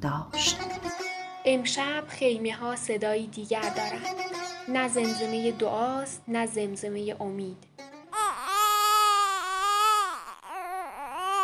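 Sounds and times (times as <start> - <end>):
speech: 0.0 - 0.6, 1.4 - 7.7
child wailing from thirst in tents: 8.1 - 11.4.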